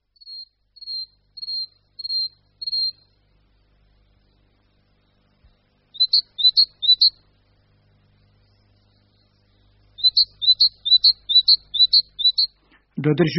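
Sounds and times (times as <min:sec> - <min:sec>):
great tit singing: 0:00.2 - 0:03.1, 0:05.9 - 0:07.2, 0:08.9 - 0:12.6
speech: 0:10.2 - 0:11.2, 0:13.0 - 0:13.3.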